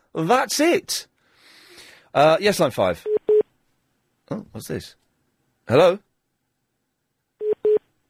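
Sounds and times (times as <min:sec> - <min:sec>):
speech: 0:00.2 - 0:01.1, 0:02.1 - 0:03.1, 0:04.3 - 0:05.0, 0:05.7 - 0:06.1
telephone engaged tone through a phone line: 0:07.4 - 0:07.8.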